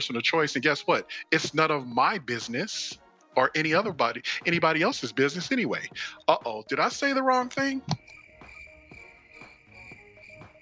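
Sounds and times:
speech: 0.0s - 8.1s
crickets chirping in a sustained high trill: 8.0s - 10.5s.

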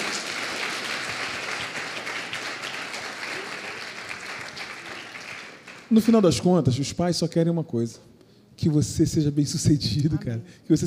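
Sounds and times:
crowd applauding: 0.0s - 6.2s
speech: 5.9s - 10.8s.

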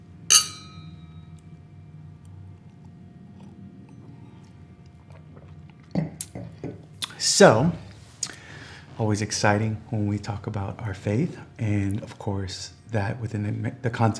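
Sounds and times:
two glasses clinking in a toast: 0.3s - 1.1s
speech: 7.4s - 7.8s, 9.0s - 14.1s.

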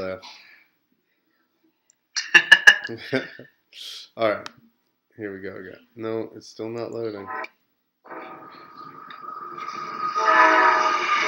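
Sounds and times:
speech: 0.0s - 0.5s, 2.9s - 4.6s, 5.2s - 7.6s
train rumbling past: 8.1s - 11.2s
train horn blaring: 9.7s - 11.2s.

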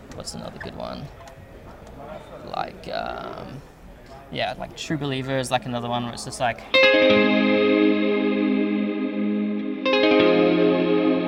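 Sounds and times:
speech: 0.2s - 1.3s, 2.0s - 3.7s, 4.3s - 8.2s
dreamy electric guitar chords under a huge reverb: 6.7s - 11.2s.

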